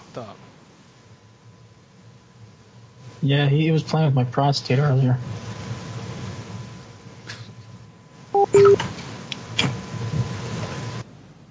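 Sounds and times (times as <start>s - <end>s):
low steady hum: 0.0s - 11.5s
speech: 0.2s - 0.4s, 3.2s - 5.4s
telephone keypad tones: 8.4s - 8.8s.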